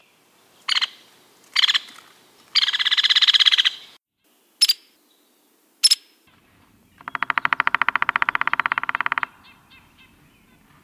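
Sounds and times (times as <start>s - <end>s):
White-headed woodpecker: 0.7s - 3.9s, 5.8s - 10.8s.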